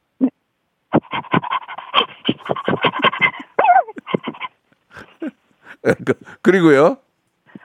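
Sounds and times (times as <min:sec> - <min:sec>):
whiny vocal squeaks: 0:00.2 - 0:04.6
person imitating an excited dog panting: 0:00.9 - 0:05.4
speech: 0:05.8 - 0:07.0.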